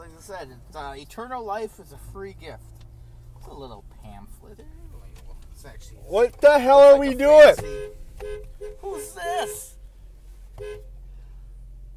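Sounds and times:
droning road noise: 0.0s - 11.9s
steady low engine rumble: 0.0s - 11.9s
speech: 0.2s - 2.8s, 3.4s - 5.0s, 5.6s - 9.8s, 10.6s - 10.9s
short car horn honk: 6.5s - 9.8s, 10.6s - 11.0s.

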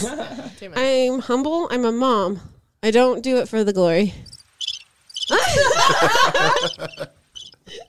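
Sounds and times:
speech: 0.0s - 4.3s, 5.3s - 7.8s
crickets chirping sound effect: 4.2s - 7.6s
loud burst of laughter: 5.3s - 7.8s.

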